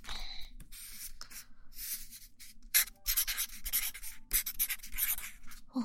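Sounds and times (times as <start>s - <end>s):
small double-ended marker pen squeaking and scratching across paper: 1.8s - 5.6s.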